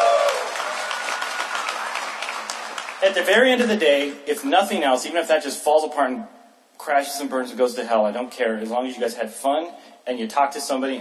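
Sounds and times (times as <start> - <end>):
audience clapping: 0.0 - 4.2
speech: 3.0 - 10.9.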